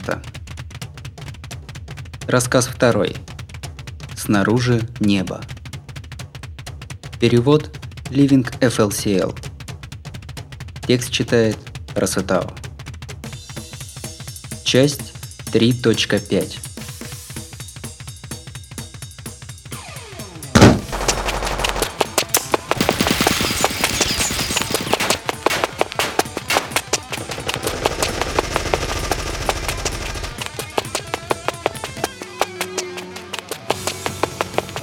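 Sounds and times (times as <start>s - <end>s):
speech: 0.0s - 0.4s, 2.3s - 3.3s, 4.2s - 5.6s, 7.2s - 9.5s, 10.9s - 12.6s, 14.7s - 16.7s
sharp opening blast: 20.6s - 30.5s
rapid bursts of automatic gunfire: 20.6s - 32.1s.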